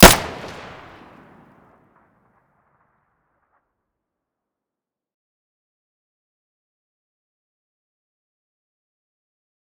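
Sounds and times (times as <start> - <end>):
weapon firing: 0.0 - 1.2.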